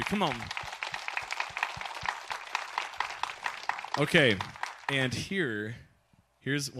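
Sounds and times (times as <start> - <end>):
audience at a church holiday event applauding: 0.0 - 5.2
speech: 0.1 - 0.6, 4.0 - 6.7.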